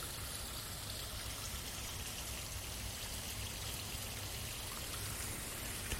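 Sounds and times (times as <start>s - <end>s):
small stream flowing in a fern forest: 0.0s - 5.9s.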